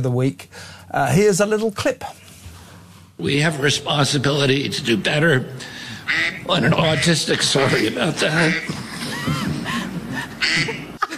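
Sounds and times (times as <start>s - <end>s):
speech: 0.0s - 2.2s, 3.2s - 9.5s
steady hiss: 0.0s - 11.1s
duck-quack phone ringtone: 6.1s - 8.7s, 10.4s - 10.8s
laughter: 6.4s - 11.1s.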